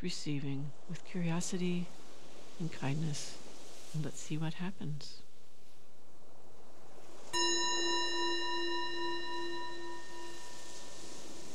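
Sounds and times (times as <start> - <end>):
speech: 0.0 - 5.3
meditation bell ringing: 7.4 - 11.5.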